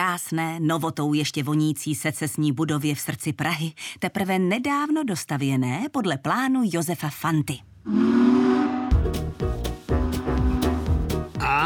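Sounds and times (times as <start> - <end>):
speech: 0.2 - 8.3
steam train whistle at railway station: 7.9 - 9.0, 9.9 - 10.9.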